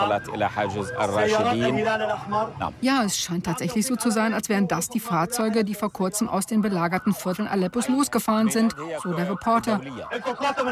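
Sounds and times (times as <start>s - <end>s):
ambulance sirens wailing: 0.0s - 10.6s
speech: 0.0s - 10.6s.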